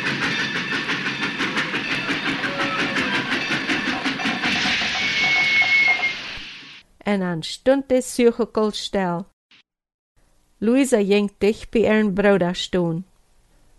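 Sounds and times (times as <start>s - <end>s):
steam train wheels clickety-clack at a station: 0.0s - 6.6s
broad hissing of steam from a steam train: 0.0s - 6.8s
high thin steam train squeal: 0.2s - 6.8s
speech: 7.1s - 9.3s, 10.6s - 13.1s.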